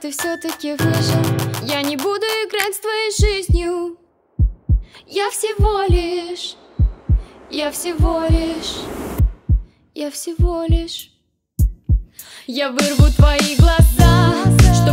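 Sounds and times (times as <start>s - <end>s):
speech: 0.0s - 4.0s, 4.9s - 6.6s, 7.5s - 9.1s, 10.0s - 11.1s, 12.5s - 14.9s
heartbeat in paired lub-dub beats: 3.2s - 3.7s, 4.4s - 5.0s, 5.6s - 9.7s, 10.4s - 10.9s, 11.6s - 12.1s.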